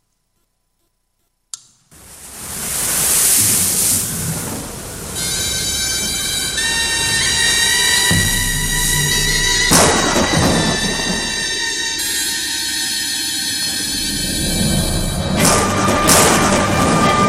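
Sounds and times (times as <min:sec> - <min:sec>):
crashing waves with deep booming surges: 0:01.9 - 0:17.2
storm at sea roaring: 0:01.9 - 0:17.2
sustained musical tones: 0:05.1 - 0:17.2.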